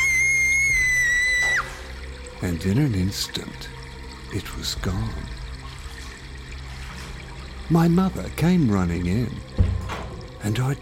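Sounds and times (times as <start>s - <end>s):
woman screaming: 0.0s - 1.7s
speech: 2.4s - 5.4s, 7.7s - 10.7s.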